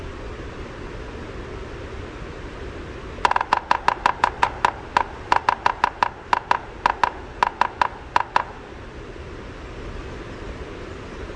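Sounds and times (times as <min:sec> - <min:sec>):
red-breasted sapsucker drumming: 0:03.2 - 0:08.9.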